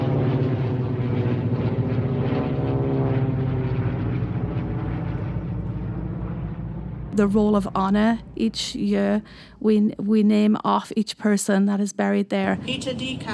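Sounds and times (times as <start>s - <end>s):
propeller planes flying over in formation: 0.0s - 9.6s, 12.6s - 13.3s
speech: 7.2s - 13.3s.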